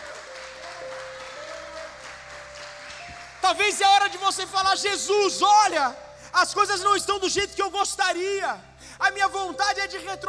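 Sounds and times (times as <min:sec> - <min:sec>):
audience applauding: 0:00.0 - 0:04.8
speech: 0:03.5 - 0:10.2.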